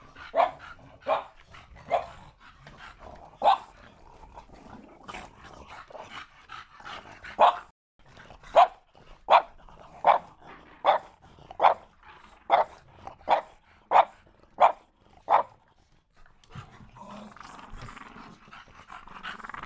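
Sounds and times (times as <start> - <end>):
dog panting: 0.0 - 4.5, 5.2 - 9.3, 11.2 - 19.6
dog barking: 0.3 - 1.3, 3.4 - 3.7, 7.4 - 7.7, 8.5 - 11.9, 12.5 - 15.5.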